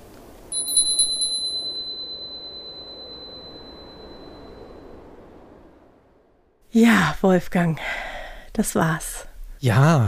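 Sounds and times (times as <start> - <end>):
small high-pitched Christmas bell jingling and ringing: 0.5 - 4.7
speech: 6.8 - 10.0.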